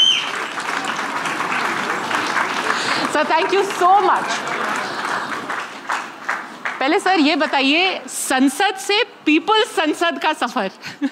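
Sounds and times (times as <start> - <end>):
audience of young people applauding at a parliamentary-style public forum: 0.0 - 7.9
speech: 3.2 - 4.6, 6.8 - 11.1.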